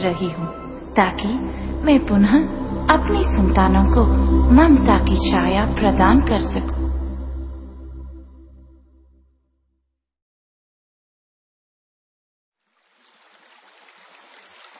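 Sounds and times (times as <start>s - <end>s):
speech: 0.0s - 6.8s
deep resonant tone: 0.0s - 9.0s
flowing stream water: 12.6s - 14.7s.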